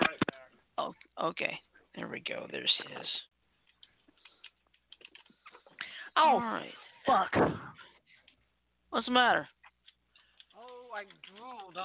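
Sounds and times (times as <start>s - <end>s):
speech: 0.9s - 3.3s, 6.2s - 7.6s, 8.9s - 9.6s, 10.9s - 11.8s
typing on a computer keyboard: 3.6s - 5.6s, 9.8s - 11.8s.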